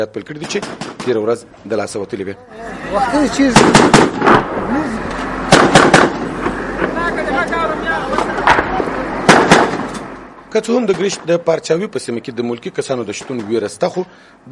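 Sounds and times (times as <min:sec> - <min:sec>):
speech: 0:00.0 - 0:05.2, 0:10.5 - 0:14.5
gunfire in a firefight between police and militants: 0:00.4 - 0:01.2, 0:03.5 - 0:04.6, 0:05.5 - 0:07.0, 0:08.5 - 0:10.1.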